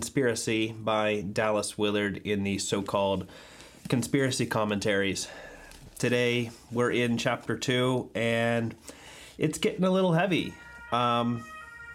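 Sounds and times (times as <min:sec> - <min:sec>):
speech: 0:00.2 - 0:11.5
ambulance siren blare outside a door: 0:10.4 - 0:11.9.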